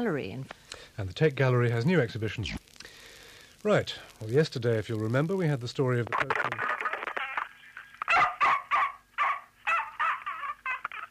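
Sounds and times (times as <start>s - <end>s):
speech: 0.0s - 2.7s, 3.6s - 6.6s
dog whining: 8.0s - 10.4s
dog barking and yelping over a telephone line: 8.0s - 10.8s.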